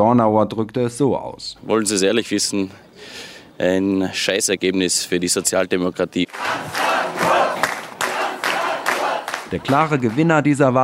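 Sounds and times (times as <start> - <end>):
speech: 0.0 - 6.8, 9.5 - 10.8
crowd cheering and shouting at party headquarters on election night: 6.3 - 10.0.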